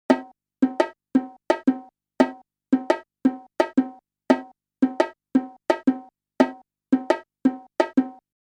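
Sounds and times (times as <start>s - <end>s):
four against three polyrhythm being played: 0.1s - 8.2s.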